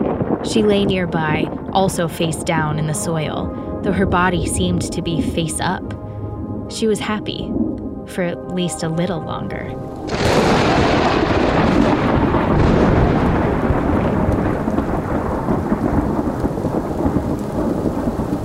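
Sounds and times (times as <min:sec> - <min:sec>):
heavy rain downpour: 0:00.0 - 0:05.7, 0:09.8 - 0:18.4
speech: 0:00.4 - 0:06.0, 0:06.7 - 0:11.0.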